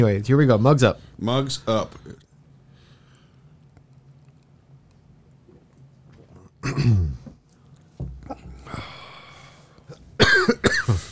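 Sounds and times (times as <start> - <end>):
speech: 0.0 - 2.3, 6.6 - 7.2
person coughing after taking too big a sip of coffee: 6.6 - 7.2, 9.9 - 11.1.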